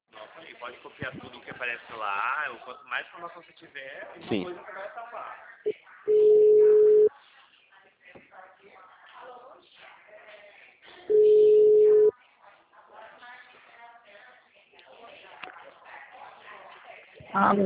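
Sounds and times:
indistinct talk: 0.1s - 17.6s
speech: 0.6s - 6.4s, 17.3s - 17.6s
ringback tone of an outgoing telephone call: 6.1s - 7.1s, 11.1s - 12.1s.

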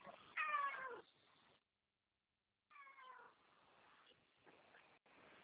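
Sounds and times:
cat meowing: 0.3s - 1.1s.

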